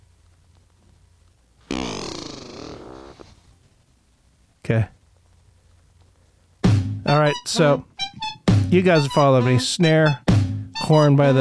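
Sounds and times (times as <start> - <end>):
long buzzy fart noise in a music track: 1.6 - 3.4
speech: 4.7 - 5.0, 7.2 - 7.9, 8.7 - 10.2, 10.9 - 11.4.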